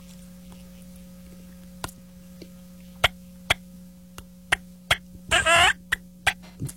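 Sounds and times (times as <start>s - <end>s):
steady low hum: 0.0s - 6.7s
soft turkey yelps from a pot call: 5.3s - 6.0s.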